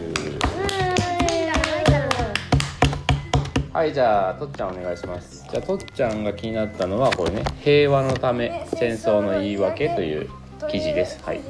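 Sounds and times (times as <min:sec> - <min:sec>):
hand clapping: 0:00.0 - 0:03.7
speech: 0:03.8 - 0:11.4.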